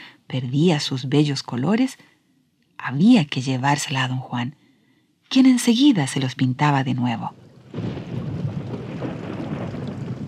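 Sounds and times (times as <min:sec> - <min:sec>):
speech: 0:00.3 - 0:02.1, 0:02.8 - 0:04.6, 0:05.3 - 0:08.1
heavy rain downpour: 0:07.3 - 0:10.2.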